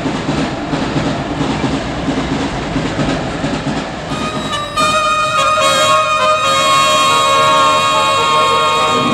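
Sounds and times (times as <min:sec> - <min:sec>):
underground train rumbling along the tracks: 0:00.0 - 0:09.1
high metallic train wheel squeals: 0:04.1 - 0:07.0.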